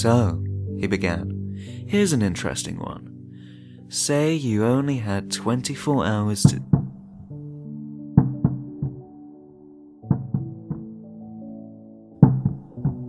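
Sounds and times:
speech: 0.0 - 3.1, 3.9 - 6.7
knocking from the floor above: 6.6 - 7.0, 8.2 - 9.0, 10.0 - 11.0, 12.2 - 13.0.

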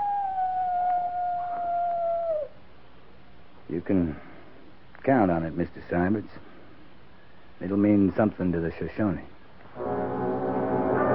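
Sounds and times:
coyote howling: 0.0 - 2.6
faint hiss: 0.0 - 11.1
speech: 3.7 - 4.3, 5.0 - 6.5, 7.6 - 9.3.

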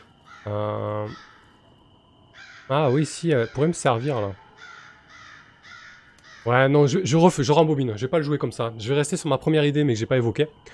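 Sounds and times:
crow cawing: 0.0 - 7.0
speech: 0.4 - 1.4, 2.7 - 4.4, 6.4 - 10.7.

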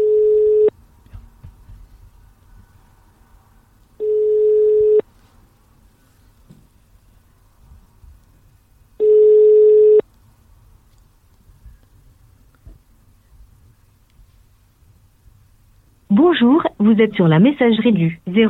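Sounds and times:
single-pitched ringback tones from an outgoing phone call: 0.0 - 0.7, 4.0 - 5.1, 9.0 - 10.0
faint noise: 0.0 - 18.4
speech: 16.3 - 18.4.

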